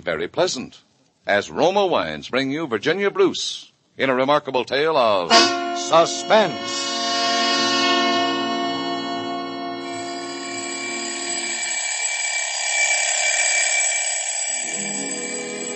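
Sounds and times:
speech: 0:00.0 - 0:06.9
alarm clock ringing: 0:05.4 - 0:15.7.

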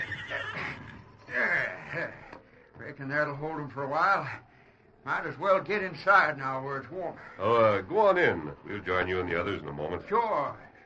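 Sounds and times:
horses neighing in a barn: 0:00.0 - 0:02.4
speech: 0:02.9 - 0:10.8.

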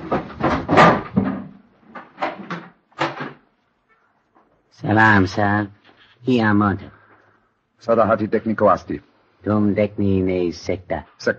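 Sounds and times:
door being opened with creaks and thumps: 0:00.0 - 0:04.5
speech: 0:04.8 - 0:07.0, 0:07.8 - 0:11.3.

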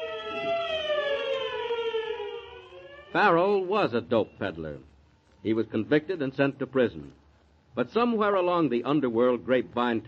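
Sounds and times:
police siren wailing: 0:00.0 - 0:03.2
speech: 0:03.1 - 0:07.2, 0:07.8 - 0:10.0.

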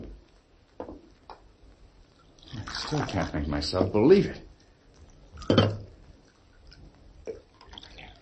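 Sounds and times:
faint drips: 0:01.1 - 0:08.2
coffee splashing into a cup: 0:02.2 - 0:03.5, 0:04.9 - 0:08.2
speech: 0:02.9 - 0:04.5.

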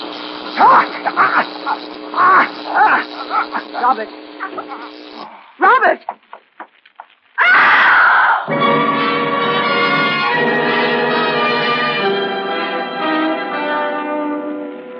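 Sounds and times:
speech: 0:00.6 - 0:06.2
loud piercing woman's scream: 0:07.4 - 0:08.5
sustained ringing chord: 0:08.5 - 0:14.9.

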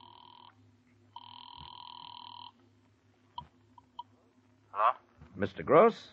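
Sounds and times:
telephone line ringing heard through a receiver: 0:00.0 - 0:02.6
speech: 0:04.8 - 0:06.1.

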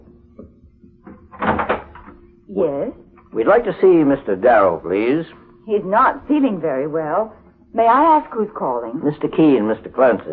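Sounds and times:
door opening: 0:01.0 - 0:02.3
speech: 0:02.6 - 0:10.3.

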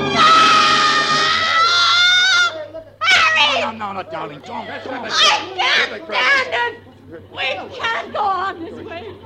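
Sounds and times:
tense lower vocal wail: 0:00.1 - 0:02.6
woman's loud sustained high-pitched shriek: 0:00.1 - 0:03.7
speech: 0:04.0 - 0:09.2
laughter: 0:04.1 - 0:09.2.

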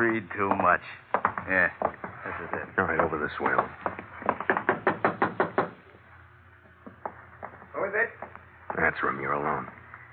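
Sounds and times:
speech: 0:00.1 - 0:04.0, 0:08.9 - 0:09.8
knocking on a door: 0:00.5 - 0:05.8, 0:06.6 - 0:08.9.

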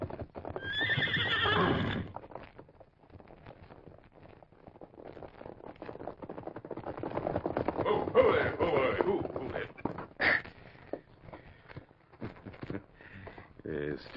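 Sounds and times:
stallion hooves clattering in a gallop: 0:00.0 - 0:14.1
stallion whinnying loudly: 0:00.5 - 0:02.2, 0:07.8 - 0:10.6.

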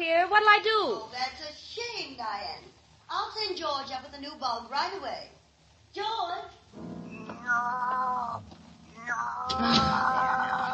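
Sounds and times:
speech: 0:00.2 - 0:05.4, 0:06.0 - 0:06.9, 0:07.5 - 0:10.7
cat meowing: 0:07.3 - 0:10.7.

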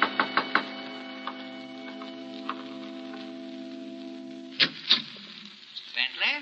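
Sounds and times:
sharp knocks on a door: 0:00.0 - 0:00.8
steady droning hum: 0:00.0 - 0:05.7.

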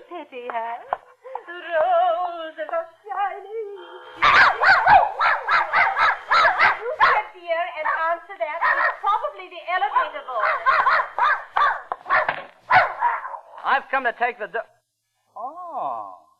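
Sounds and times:
speech: 0:00.2 - 0:03.5, 0:14.0 - 0:14.7
dog whimpering: 0:03.8 - 0:07.3, 0:09.9 - 0:13.5
dog barking: 0:04.2 - 0:09.2, 0:09.9 - 0:13.5.

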